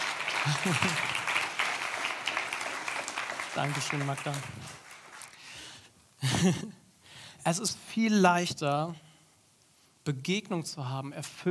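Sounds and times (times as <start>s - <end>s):
applause from a group: 0.0s - 5.8s
speech: 0.4s - 1.1s, 3.6s - 4.8s, 6.4s - 6.8s, 7.4s - 9.0s, 10.0s - 11.4s
laughter: 0.4s - 1.3s.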